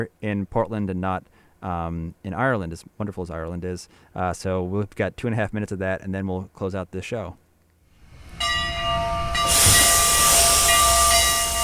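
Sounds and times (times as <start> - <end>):
speech: 0.0 - 7.4
faint ringing metallic tone: 8.1 - 11.6
narrow gauge steam locomotive hissing steam while being fired up: 8.1 - 11.6.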